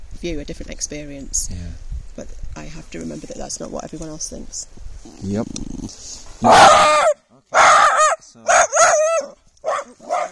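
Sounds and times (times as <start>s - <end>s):
speech: 0.2s - 7.2s
dog barking and whining excitedly: 6.4s - 10.3s.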